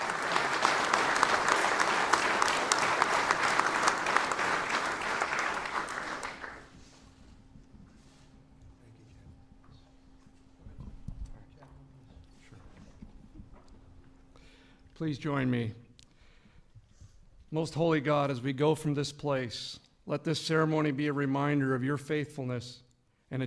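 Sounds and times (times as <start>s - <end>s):
large audience applauding at a ceremony: 0.0s - 6.8s
speech: 15.0s - 15.8s, 17.5s - 23.4s.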